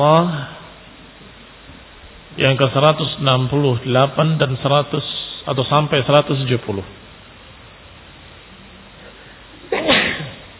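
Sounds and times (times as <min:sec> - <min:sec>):
speech: 0:00.0 - 0:00.5, 0:02.4 - 0:07.0
sneeze: 0:09.7 - 0:10.5.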